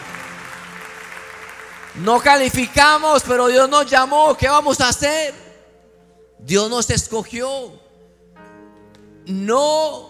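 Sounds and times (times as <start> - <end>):
large church audience applauding: 0.0 - 2.7
faint sustained musical tone: 0.0 - 10.0
speech: 2.0 - 5.4, 6.4 - 7.8, 9.3 - 10.0.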